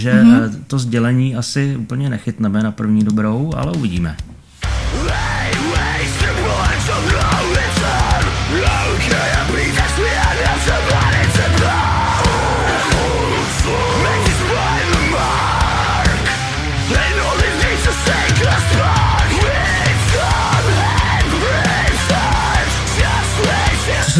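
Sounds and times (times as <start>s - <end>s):
strained energetic lead vocal singing in English: 0.0s - 0.7s, 4.9s - 24.1s
speech: 0.0s - 4.3s
dense drums: 3.5s - 24.0s
guitars: 4.6s - 24.1s
heavy bass: 4.7s - 24.1s
full band song with heavy bass, dense drums and guitars: 4.8s - 24.1s.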